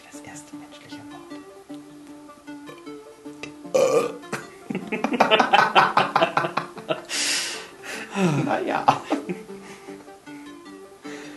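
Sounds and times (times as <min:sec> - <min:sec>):
short gurgling belch: 0:03.4 - 0:04.5
loud drawn-out burp: 0:03.7 - 0:04.2
speech: 0:03.8 - 0:06.6, 0:08.2 - 0:09.1
laughter: 0:04.4 - 0:07.1, 0:07.9 - 0:09.5.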